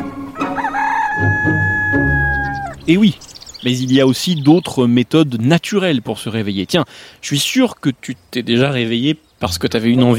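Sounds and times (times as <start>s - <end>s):
rooster crowing cock-a-doodle-doo: 0.2s - 2.9s
speech: 2.9s - 10.1s.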